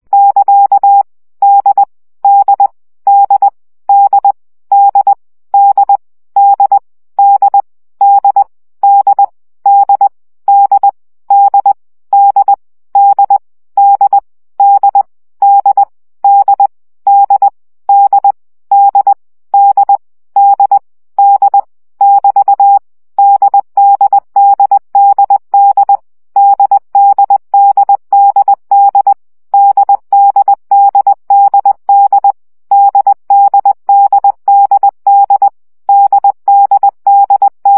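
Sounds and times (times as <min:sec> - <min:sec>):
morse code practice at 7 baud: 0:00.1 - 0:37.7.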